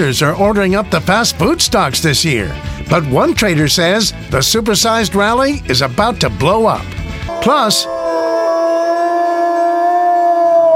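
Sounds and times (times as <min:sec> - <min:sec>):
speech: 0:00.0 - 0:08.0
long loud wolf-like howl: 0:07.3 - 0:10.7.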